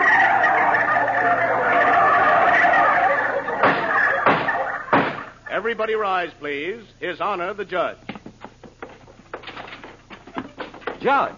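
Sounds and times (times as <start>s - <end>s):
crowd of turkeys gobbling: 0.0s - 5.5s
speech: 5.6s - 8.1s, 11.0s - 11.3s.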